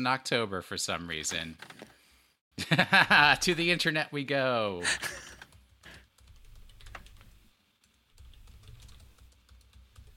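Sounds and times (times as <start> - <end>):
speech: 0.0 - 1.8, 2.6 - 5.3
typing on a computer keyboard: 5.3 - 7.4, 8.2 - 10.1.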